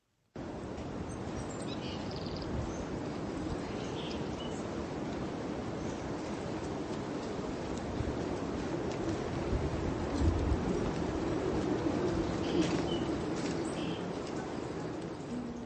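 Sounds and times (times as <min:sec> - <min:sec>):
outdoor ambient noise: 0:00.0 - 0:15.6
birds calling in a snowy forest: 0:01.2 - 0:04.8, 0:11.4 - 0:15.6.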